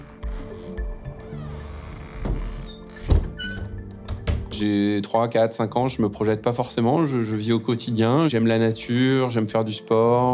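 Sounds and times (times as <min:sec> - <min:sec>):
window being opened with dull clunks and knocks of the latch and frame: 0:02.2 - 0:04.5
speech: 0:04.6 - 0:10.3.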